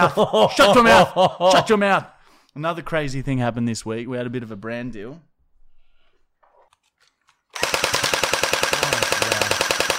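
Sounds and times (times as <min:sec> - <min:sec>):
laughter: 0:00.0 - 0:02.0
speech: 0:00.0 - 0:05.3
toy gun firing continuously: 0:07.5 - 0:09.9.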